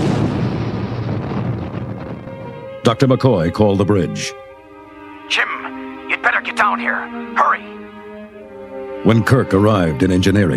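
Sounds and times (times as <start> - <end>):
massive explosion of a fictional device as a starship jumps to warp speed: 0.0 - 2.6
speech: 2.8 - 4.4, 5.3 - 5.5, 6.4 - 7.8, 9.0 - 10.5.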